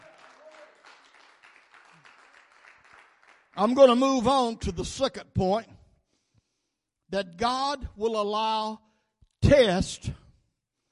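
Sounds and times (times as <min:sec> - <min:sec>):
crowd clapping hands in praise: 0:00.0 - 0:04.0
speech: 0:03.6 - 0:05.8, 0:07.1 - 0:08.8, 0:09.5 - 0:10.2.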